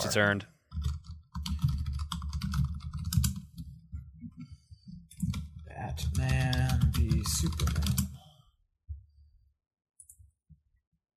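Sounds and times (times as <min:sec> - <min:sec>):
speech: 0:00.0 - 0:00.5, 0:05.9 - 0:08.1
typing on a computer keyboard entering a search query: 0:00.7 - 0:03.7, 0:05.1 - 0:08.2.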